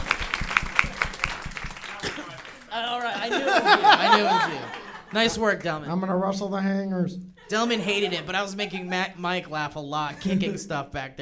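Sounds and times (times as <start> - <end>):
steady evenly spaced hand claps: 0.0 - 3.1
laughter: 1.8 - 5.7, 7.4 - 10.9
speech: 2.8 - 11.2.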